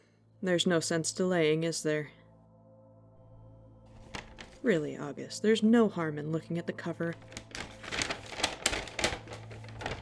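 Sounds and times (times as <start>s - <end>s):
speech: 0.4s - 2.2s, 4.6s - 7.4s
crisp parcel paper crinkling as a parcel is unwrapped: 3.9s - 4.7s, 7.1s - 10.0s.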